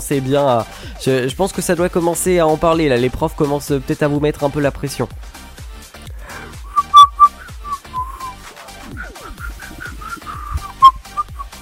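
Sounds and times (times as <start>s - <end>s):
speech: 0.1s - 5.4s
person whistling a short uneven tune: 6.7s - 11.5s.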